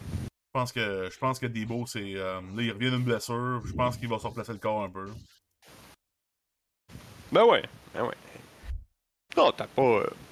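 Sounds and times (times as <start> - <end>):
speech: 0.6 - 5.4, 7.3 - 8.3, 9.4 - 10.2
harsh bursts of broadband static: 1.7 - 6.0.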